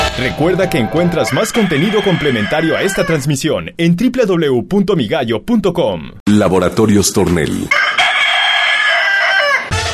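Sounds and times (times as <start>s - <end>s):
speech: 0.2s - 8.1s
rooster crowing: 0.4s - 3.3s, 7.7s - 9.8s.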